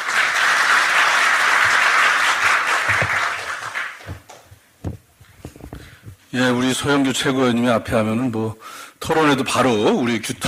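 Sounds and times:
audience applause: 0.0s - 4.5s
handling thumps: 4.1s - 6.2s
speech: 6.4s - 10.4s.

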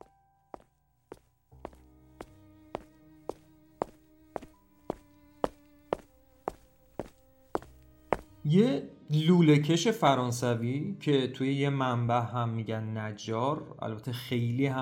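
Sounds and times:
evenly paced footsteps: 0.0s - 8.4s
speech: 8.4s - 14.7s.

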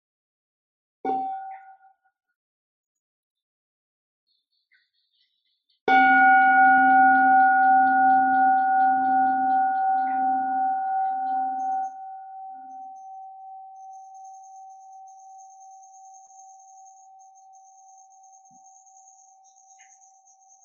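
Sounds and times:
mindfulness bell ringing: 5.9s - 17.5s.

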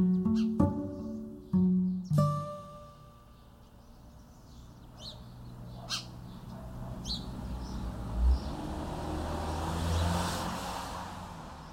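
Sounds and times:
faint bird chirps: 0.0s - 7.8s
cars passing by: 2.6s - 11.7s
steady low rumble of street traffic: 3.2s - 11.7s.

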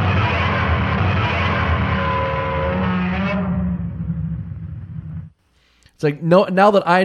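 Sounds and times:
giant movie monster roar: 0.0s - 4.5s
speech: 6.0s - 7.0s.

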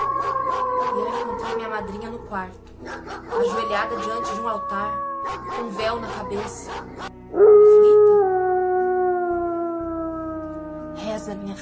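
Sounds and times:
dog howling: 0.0s - 2.3s, 2.9s - 11.1s
speech: 1.7s - 7.5s, 11.3s - 11.6s.

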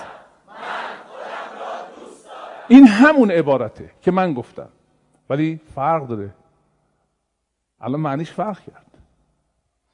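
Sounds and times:
large crowd chanting a short phrase in unison: 0.0s - 2.8s
speech: 2.7s - 6.4s, 7.8s - 8.9s.

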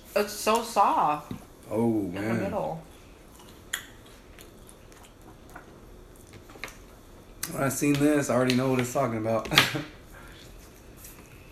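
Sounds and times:
speech: 0.2s - 2.9s, 7.5s - 10.0s
person chewing crunchy toast: 2.9s - 7.4s.

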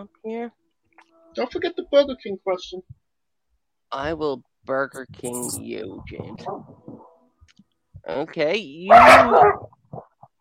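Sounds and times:
speech: 0.0s - 0.6s, 1.4s - 3.0s, 3.9s - 7.1s, 8.0s - 9.8s
female puppy barking: 8.9s - 9.7s.

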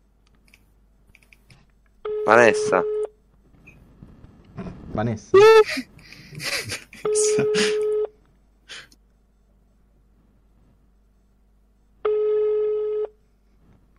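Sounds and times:
ringback tone of an unanswered phone call: 2.1s - 3.1s, 12.0s - 13.2s
speech: 2.3s - 3.0s, 5.0s - 7.9s
laughter: 5.4s - 8.0s.

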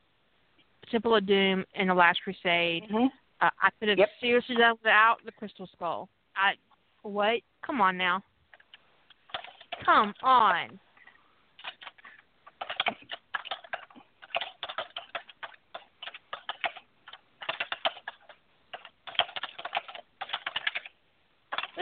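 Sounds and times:
speech: 0.9s - 8.3s, 9.8s - 10.8s
rapid typing on a computer keyboard: 8.6s - 10.2s, 11.6s - 21.7s.

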